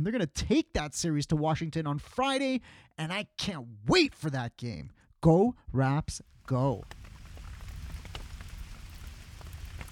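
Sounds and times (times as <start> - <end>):
speech: 0.0 - 7.0
steady rain: 6.3 - 9.9.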